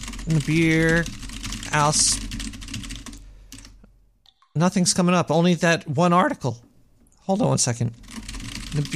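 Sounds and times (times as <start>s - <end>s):
typing on a computer keyboard: 0.0s - 3.8s, 8.0s - 8.9s
speech: 0.3s - 2.4s, 4.6s - 6.7s, 7.3s - 8.0s, 8.7s - 8.9s.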